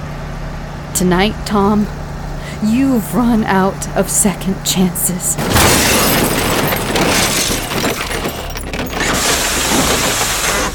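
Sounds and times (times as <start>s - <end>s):
speech: 1.0s - 2.0s, 2.6s - 5.9s
glass shattering in a car crash: 5.4s - 10.4s
car crash with cab buckling on impact: 5.4s - 10.7s.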